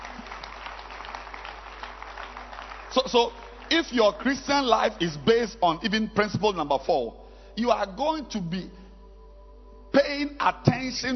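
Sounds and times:
crowd applauding: 0.0s - 5.3s
speech: 2.9s - 8.8s, 9.9s - 11.1s.

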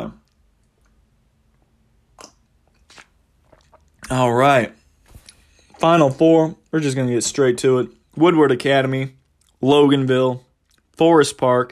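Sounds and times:
slurping sips of hot throat coat tea: 2.2s - 4.1s
speech: 4.1s - 4.8s, 5.8s - 11.7s.

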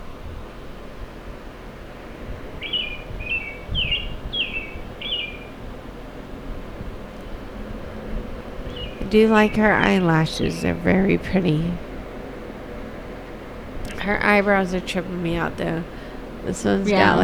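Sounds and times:
windy rustling noise: 0.0s - 17.2s
bird chirping: 2.6s - 5.6s, 8.6s - 11.0s
speech: 9.1s - 11.8s, 14.1s - 17.2s.

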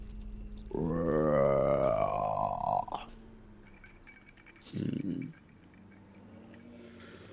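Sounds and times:
person imitating a long weary yawning groan: 0.7s - 3.1s
short deeper grunting sound: 0.7s - 3.1s.

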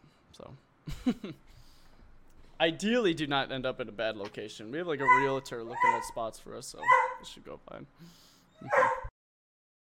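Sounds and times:
speech: 0.4s - 1.6s, 2.6s - 9.0s
dog giving a whiny bark and brief whimper: 5.0s - 6.2s, 6.8s - 7.2s, 8.6s - 9.1s.

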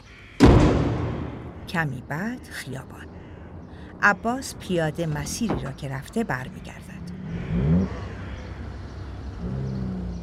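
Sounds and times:
speech: 1.7s - 3.2s, 4.0s - 7.4s
car speeding past on a city street: 7.0s - 10.2s.

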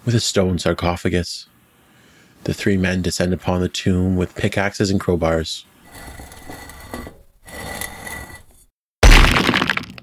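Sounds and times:
speech: 0.0s - 1.5s, 2.4s - 6.2s
stone scraping and grinding: 5.8s - 8.7s
crumbling debris: 9.0s - 10.0s.

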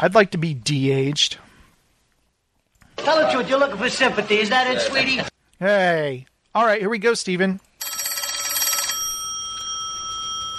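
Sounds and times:
speech: 0.0s - 1.5s, 3.0s - 8.0s
telephone bell ringing: 7.8s - 10.5s.

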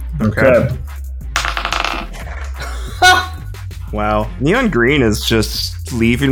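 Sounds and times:
speech: 0.2s - 1.0s, 3.9s - 6.2s
dice rolling across a hard table: 1.4s - 2.6s.

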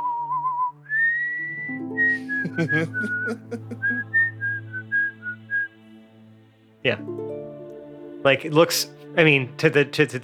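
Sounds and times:
hamster whistling a sweet lilting melody: 0.0s - 2.4s, 4.1s - 5.7s
soft musical accompaniment: 0.5s - 10.2s
laughter: 2.1s - 4.2s
speech: 2.5s - 4.2s, 6.8s - 7.3s, 8.2s - 10.2s.

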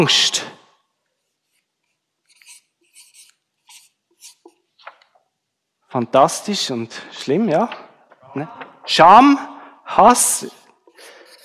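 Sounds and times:
speech: 0.0s - 0.5s, 5.9s - 7.8s, 8.4s - 10.6s
scratchy writing strokes on a surface: 1.2s - 5.0s, 10.9s - 11.4s.

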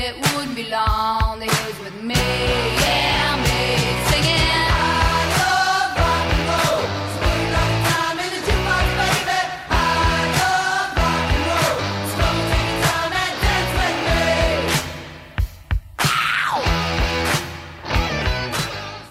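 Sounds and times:
steady simple rock drum backbeat: 0.0s - 17.7s
gritty growling electric guitars in rock song: 2.2s - 15.4s, 16.0s - 19.1s
sharp hand claps: 17.2s - 17.8s, 18.4s - 18.9s.

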